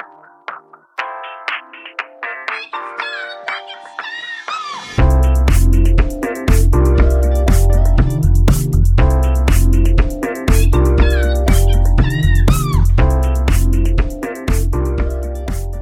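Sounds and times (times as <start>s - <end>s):
loud rhythmic music bed: 0.0s - 15.8s
cat meowing: 11.0s - 13.0s.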